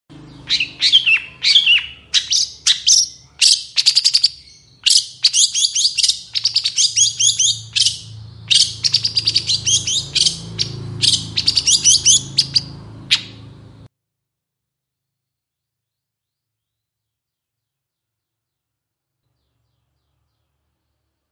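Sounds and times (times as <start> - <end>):
Long-tailed shrike song in the morning: 0.3 - 13.8.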